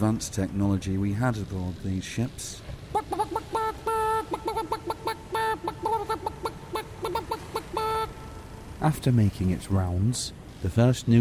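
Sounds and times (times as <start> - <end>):
speech: 0.0 - 3.3, 8.8 - 11.1
chicken clucking: 2.9 - 8.2.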